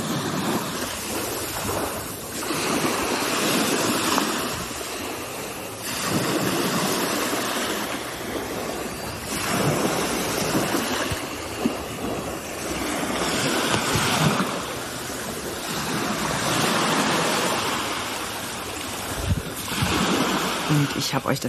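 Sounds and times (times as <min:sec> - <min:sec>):
wind buffeting the microphone: 0:00.0 - 0:20.8
Baltic Sea waves washing onto a shoreline: 0:00.0 - 0:21.4
speech: 0:21.1 - 0:21.4.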